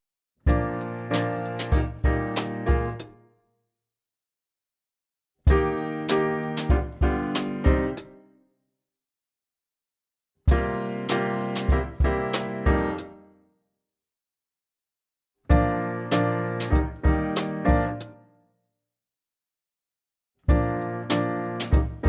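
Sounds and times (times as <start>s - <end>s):
hi-hat play-along rhythm exercise: 0.5s - 3.0s, 5.5s - 8.1s, 10.5s - 12.8s, 15.5s - 18.1s, 20.5s - 22.0s.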